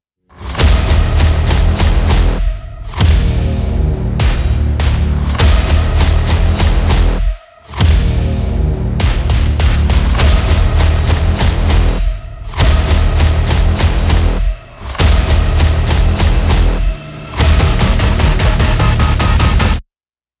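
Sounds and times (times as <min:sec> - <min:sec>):
horror action trailer music: 0:00.3 - 0:19.8.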